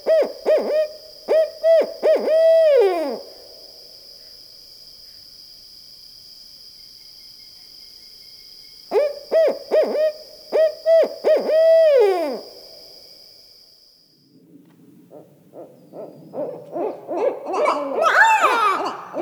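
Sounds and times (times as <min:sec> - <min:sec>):
Barred owl hooting: 0:00.0 - 0:03.4, 0:08.9 - 0:12.8, 0:15.1 - 0:19.1.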